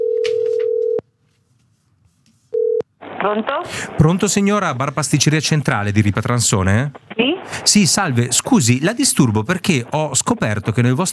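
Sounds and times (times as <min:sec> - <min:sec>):
Italian telephone ringback tone calling a café-pastry bar: 0:00.0 - 0:01.0, 0:02.6 - 0:02.8
faint noise: 0:00.0 - 0:11.1
speech: 0:03.2 - 0:11.1.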